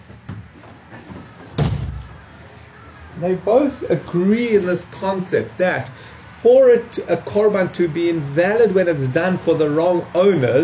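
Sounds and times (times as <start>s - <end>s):
door shutting with a thud: 1.5s - 2.2s
speech: 3.2s - 10.6s.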